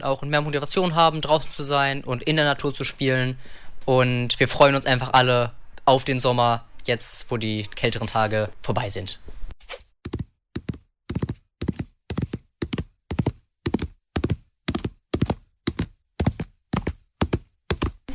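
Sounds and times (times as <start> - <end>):
speech: 0.0 - 9.8
horse hooves clopping on a hard stable floor: 10.1 - 18.0.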